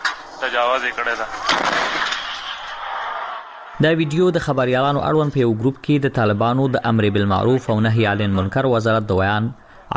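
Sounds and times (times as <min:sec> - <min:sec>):
speech: 0:00.4 - 0:01.8, 0:03.8 - 0:09.9
people shouting: 0:01.1 - 0:04.1
improvised artillery cannon firing in Kunar: 0:01.4 - 0:02.8.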